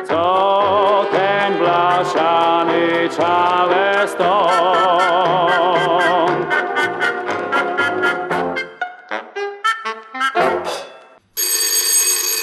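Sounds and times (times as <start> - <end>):
speech: 0.0 - 0.4
bouncy melodic passage of music: 0.0 - 11.2
loud telephone bell ringing: 11.4 - 12.4.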